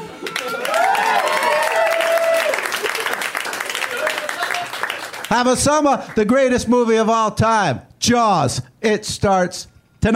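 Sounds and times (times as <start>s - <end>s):
crowd applauding: 0.0s - 6.2s
whoops: 0.1s - 3.1s
speech: 5.3s - 10.1s.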